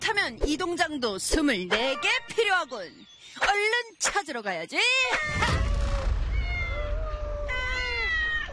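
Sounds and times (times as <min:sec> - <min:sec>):
speech: 0:00.1 - 0:05.6
several cats meowing: 0:06.2 - 0:08.5.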